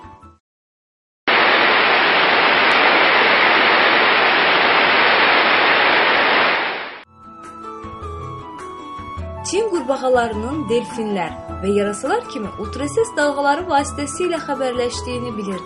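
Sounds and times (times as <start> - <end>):
strong rushing water of waterfalls and rivers in a frog habitat in China: 1.3 - 7.0
speech: 9.5 - 15.6.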